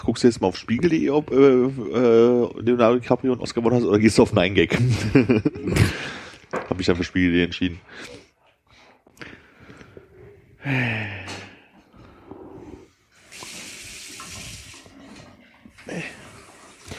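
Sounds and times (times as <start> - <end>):
speech: 0.1 - 6.0, 6.8 - 8.2, 10.6 - 11.2
laughter: 4.7 - 6.0
stovetop espresso maker gurgling and sputtering on a stove: 13.2 - 14.9.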